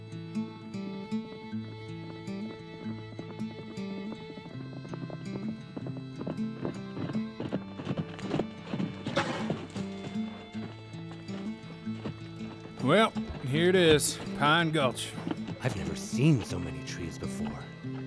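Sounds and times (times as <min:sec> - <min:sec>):
ridden horse's hooves clip-clopping at a walking pace: 0:00.4 - 0:18.0
sustained musical backdrop: 0:12.8 - 0:17.8
speech: 0:12.9 - 0:17.7.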